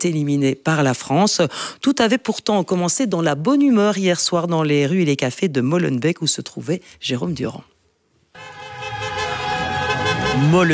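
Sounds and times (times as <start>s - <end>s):
speech: 0.0s - 7.7s, 10.4s - 10.7s
car horns honking in the street: 8.4s - 10.7s.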